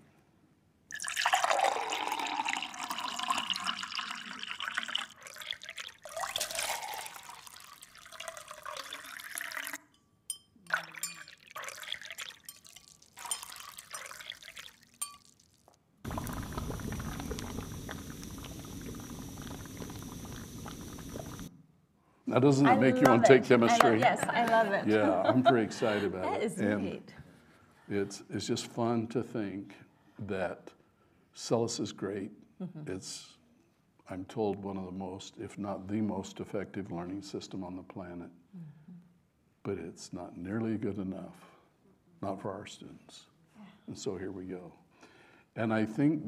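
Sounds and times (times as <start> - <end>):
water poured from a flask into a glass beaker: 0.9 - 9.9, 10.6 - 21.5
speech: 22.3 - 27.2, 27.9 - 30.8, 31.4 - 33.4, 34.1 - 38.4, 39.7 - 41.5, 42.2 - 43.3, 43.9 - 44.8, 45.6 - 46.2
laughter: 22.7 - 26.5.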